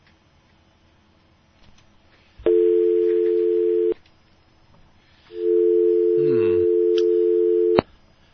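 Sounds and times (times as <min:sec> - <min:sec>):
phone line clicking off: 0:02.5 - 0:04.0, 0:05.4 - 0:07.8
telephone dial tone on an open call-in phone line: 0:02.5 - 0:04.0, 0:05.4 - 0:07.8.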